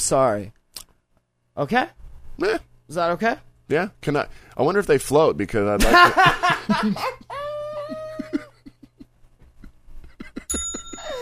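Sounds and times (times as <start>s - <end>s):
speech: 0.0s - 0.6s, 1.6s - 7.3s
people laughing: 5.8s - 11.1s
bicycle bell ringing: 10.5s - 11.2s.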